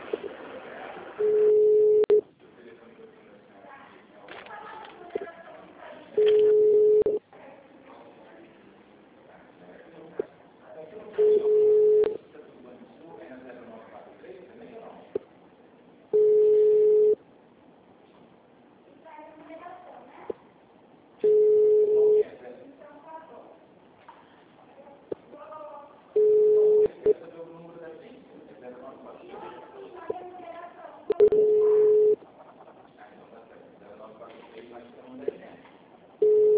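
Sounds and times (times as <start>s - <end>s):
voices: 0.0s - 17.2s, 21.3s - 36.5s
telephone ringing tones of a dialed call: 1.2s - 2.2s, 6.2s - 7.2s, 16.1s - 17.2s, 21.2s - 22.2s, 26.2s - 27.1s, 31.1s - 32.2s, 36.2s - 36.5s.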